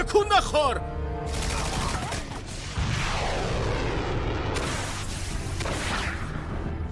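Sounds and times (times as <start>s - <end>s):
speech: 0.1s - 1.5s
constant rumbling barrage: 1.5s - 6.7s
explosions: 1.5s - 6.7s
missiles launching: 1.9s - 6.7s.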